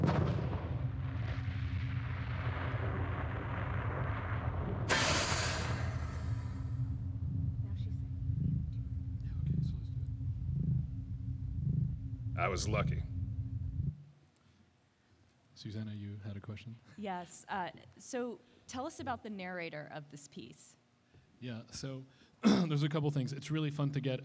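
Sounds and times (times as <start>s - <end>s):
sudden bright explosion burst: 0.0s - 10.0s
heavy continuous low rumble: 0.0s - 14.1s
speech: 12.4s - 13.1s, 15.6s - 20.8s, 21.4s - 24.2s.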